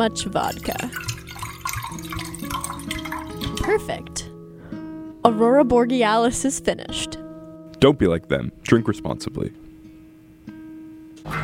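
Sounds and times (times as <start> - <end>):
speech: 0.0 - 1.1, 3.7 - 4.3, 5.2 - 7.2, 7.8 - 9.6, 11.3 - 11.4
water pouring into a glass while a drink is mixed: 0.4 - 4.2.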